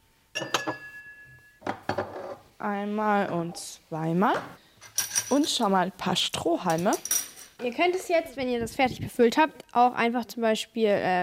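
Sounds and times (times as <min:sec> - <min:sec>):
glass ringing tone: 0:00.3 - 0:01.7
speech: 0:00.4 - 0:00.8, 0:02.6 - 0:04.6, 0:05.3 - 0:11.2
drinking glasses clinking on a kitchen counter: 0:00.4 - 0:02.0.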